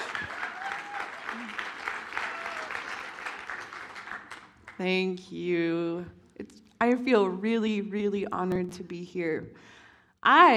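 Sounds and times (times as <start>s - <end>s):
cheers: 0.0s - 4.5s
room full of people clapping: 0.0s - 4.8s
speech: 4.8s - 6.2s, 6.8s - 10.5s.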